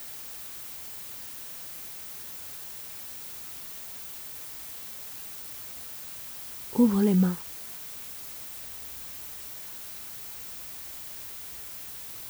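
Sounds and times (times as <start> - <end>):
speech: 6.8 - 7.4
white noise from a loudspeaker: 6.8 - 7.4.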